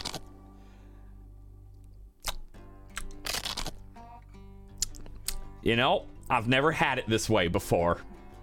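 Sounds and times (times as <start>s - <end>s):
crunching bite of pizza: 0.0s - 0.3s, 2.2s - 3.8s, 4.8s - 5.4s
speech: 5.6s - 8.1s.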